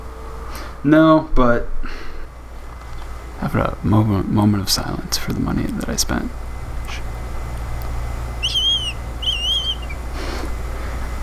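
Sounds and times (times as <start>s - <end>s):
steady low hum: 0.0s - 11.2s
speech: 0.8s - 2.0s, 3.4s - 7.1s
short high whistle blasts: 8.4s - 10.1s.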